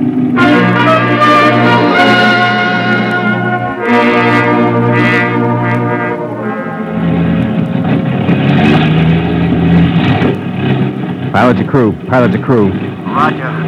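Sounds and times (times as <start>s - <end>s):
aircraft engines revving for takeoff: 0.0s - 13.6s
speech: 11.4s - 13.6s.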